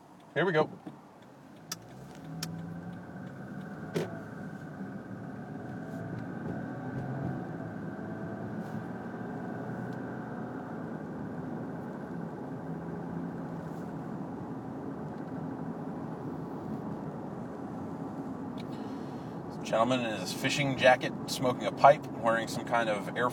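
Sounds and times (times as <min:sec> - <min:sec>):
car engines rumbling in street traffic: 0:00.0 - 0:23.3
speech: 0:00.4 - 0:01.0, 0:19.7 - 0:23.3.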